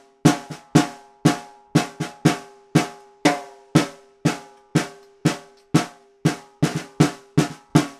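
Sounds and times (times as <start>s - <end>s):
vintage Ludwig snare drum percussion, Appalachian: 0.3s - 7.9s.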